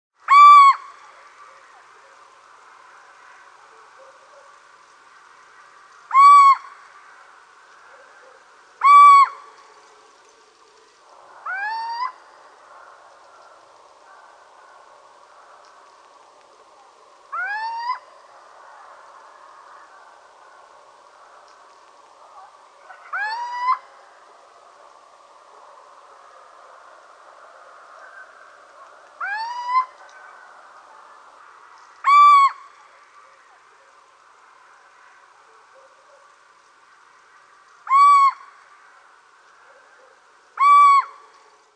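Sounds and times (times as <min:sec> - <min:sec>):
little owl calling: 0:00.3 - 0:01.1, 0:06.1 - 0:06.9, 0:07.9 - 0:09.7, 0:11.4 - 0:12.4, 0:17.3 - 0:18.1, 0:22.4 - 0:24.0, 0:29.2 - 0:30.4, 0:32.0 - 0:32.8, 0:37.8 - 0:38.8, 0:39.7 - 0:41.5.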